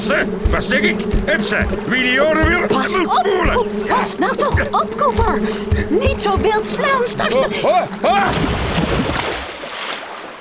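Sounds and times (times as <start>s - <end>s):
oar dipping and pulling through water beside a small boat: 0.0s - 10.4s
speech: 0.1s - 9.5s.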